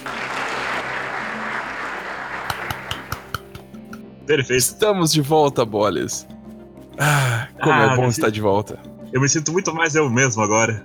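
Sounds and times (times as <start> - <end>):
crowd applauding: 0.0 - 3.9
speech: 4.3 - 6.3, 7.0 - 10.8.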